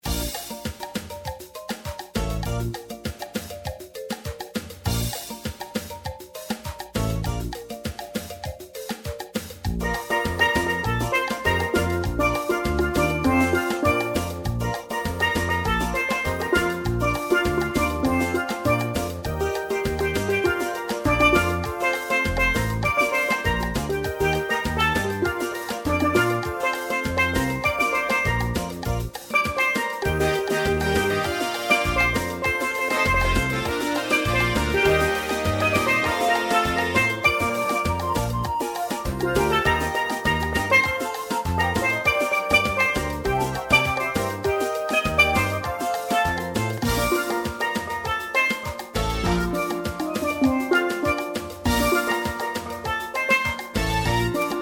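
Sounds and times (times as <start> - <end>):
steel drum playing: 0.0 - 54.6.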